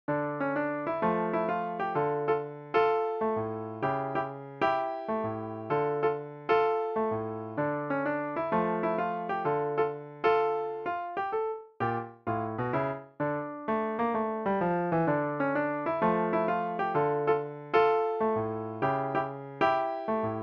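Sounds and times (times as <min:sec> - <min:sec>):
piano piece: 0:00.1 - 0:20.4.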